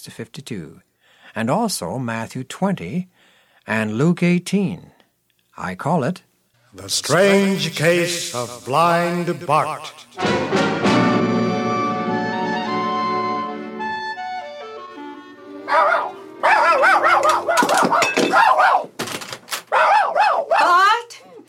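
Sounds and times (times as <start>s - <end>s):
speech: 0.0s - 5.0s, 5.6s - 11.1s
sustained musical tones: 9.3s - 16.5s
small dog barking: 15.7s - 18.9s, 19.7s - 20.9s.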